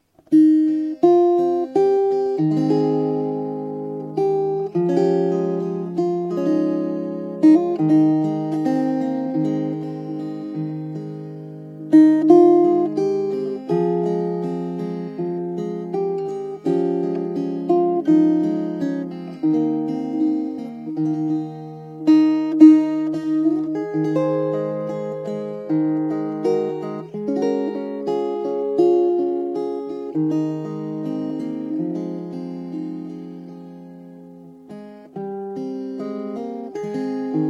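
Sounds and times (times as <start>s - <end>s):
Appalachian banjola playing: 0.4s - 33.0s.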